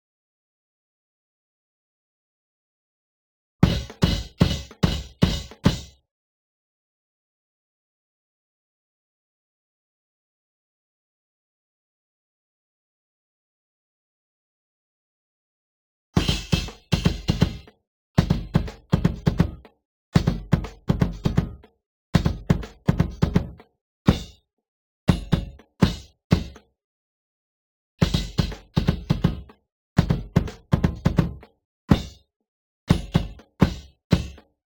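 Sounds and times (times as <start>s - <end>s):
bass drum: 3.6s - 5.9s, 16.2s - 24.4s, 25.1s - 26.6s, 28.0s - 32.2s, 32.9s - 34.4s.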